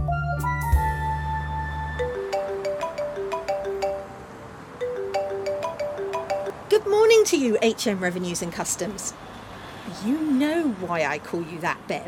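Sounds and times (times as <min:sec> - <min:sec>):
phone ringing with bright melodic electronic ringtone: 0:00.2 - 0:07.2
busy rumbling street background: 0:00.5 - 0:12.0
speech: 0:06.8 - 0:09.4, 0:09.9 - 0:12.0.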